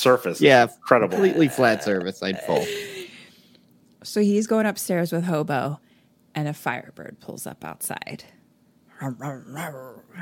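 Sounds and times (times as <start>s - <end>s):
speech: 0.0s - 2.9s, 4.0s - 8.4s, 9.0s - 10.1s
person's voice imitating a dog barking and growling: 1.1s - 2.6s.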